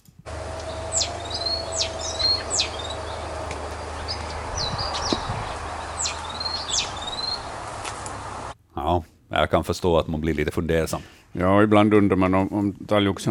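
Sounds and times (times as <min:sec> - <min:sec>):
great tit singing an unusual song variation: 0:00.3 - 0:08.6
steady hum: 0:00.3 - 0:08.6
speech: 0:09.4 - 0:13.3.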